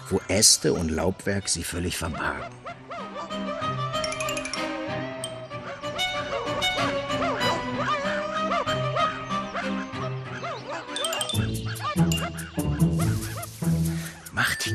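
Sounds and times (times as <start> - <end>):
speech: 0.1 - 3.0
hunter's dogs barking and yelping: 2.4 - 13.5.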